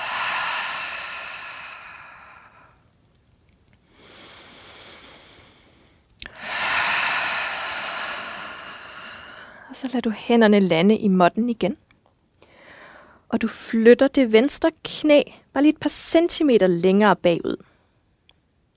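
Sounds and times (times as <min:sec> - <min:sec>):
slow deep breaths during a yoga pose: 0:00.0 - 0:02.9, 0:03.8 - 0:09.7, 0:12.4 - 0:13.3
speech: 0:09.7 - 0:11.8, 0:13.3 - 0:17.7.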